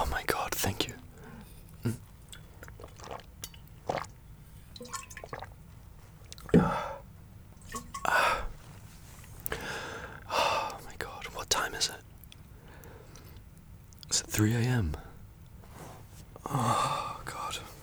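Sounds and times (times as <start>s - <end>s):
water being poured: 0.0s - 9.5s
small drips and clicks: 0.0s - 16.5s
person sipping water: 0.0s - 17.8s
speech: 14.4s - 15.0s.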